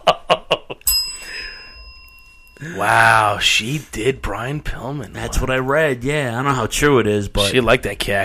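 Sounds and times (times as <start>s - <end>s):
bright bell ringing: 0.8s - 3.6s
speech: 2.6s - 8.2s.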